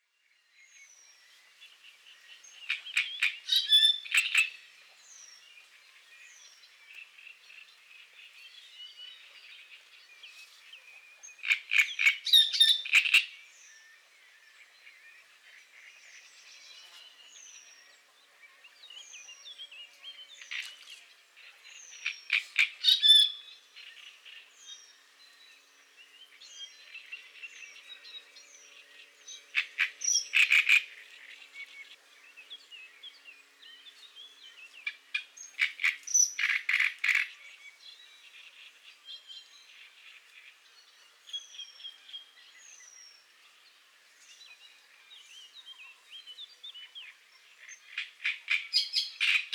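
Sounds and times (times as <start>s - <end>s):
great reed warbler call: 0.5s - 49.5s.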